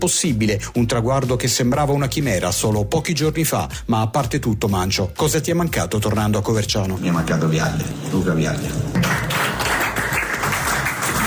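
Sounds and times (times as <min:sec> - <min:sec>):
speech: 0:00.0 - 0:09.2
applause: 0:08.6 - 0:11.2.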